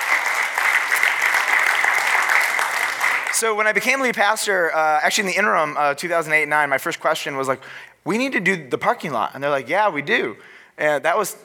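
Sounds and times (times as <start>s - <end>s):
audience applauding: 0.0s - 3.5s
speech: 3.4s - 11.4s.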